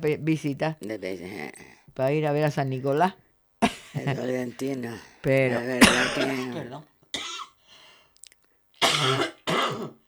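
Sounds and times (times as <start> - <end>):
speech: 0.0 - 6.9, 8.9 - 10.0
person coughing: 5.6 - 7.6, 8.8 - 10.0.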